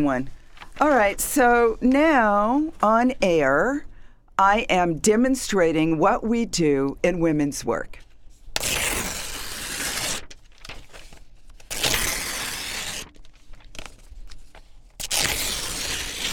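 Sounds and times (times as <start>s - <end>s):
speech: 0.0s - 8.0s
paper crinkling and rustling: 0.3s - 1.2s, 8.0s - 16.3s.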